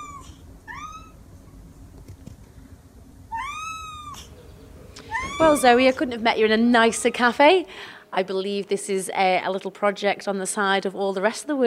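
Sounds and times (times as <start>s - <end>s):
Manx cat meowing in a cat cafe: 0.0s - 1.2s, 3.3s - 4.3s, 5.0s - 5.9s
low hum: 0.0s - 11.6s
speech: 5.4s - 11.6s.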